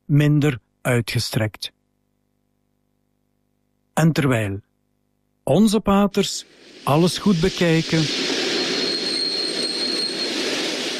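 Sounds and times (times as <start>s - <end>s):
speech: 0.1s - 1.8s, 4.0s - 4.7s, 5.5s - 8.2s
train rolling stock rumbling into a railway station in Moscow: 6.8s - 10.9s
thin high train wheel squeal: 7.3s - 10.9s.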